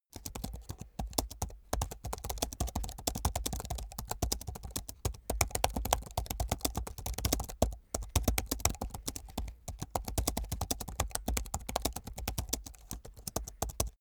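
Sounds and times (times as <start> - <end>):
fast hard typing on a laptop keyboard: 0.2 - 13.9.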